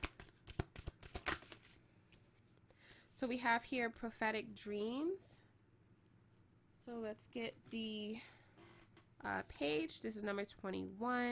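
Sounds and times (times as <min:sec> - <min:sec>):
oracle cards rustling and flicking while drawn from a deck: 0:00.0 - 0:02.3
speech: 0:03.2 - 0:05.4, 0:06.9 - 0:08.4, 0:09.2 - 0:11.2.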